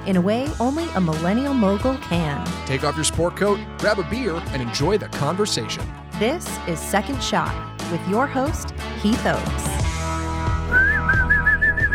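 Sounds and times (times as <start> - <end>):
speech: 0.0 - 9.8
person whistling a short bright tune: 10.7 - 11.9.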